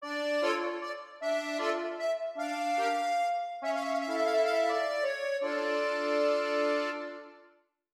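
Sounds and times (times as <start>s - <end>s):
accordion sting: 0.0s - 7.3s.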